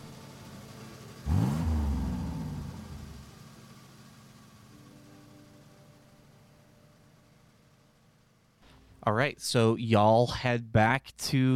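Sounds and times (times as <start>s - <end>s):
car engine starting and accelerating away: 0.0s - 4.7s
speech: 9.0s - 11.5s.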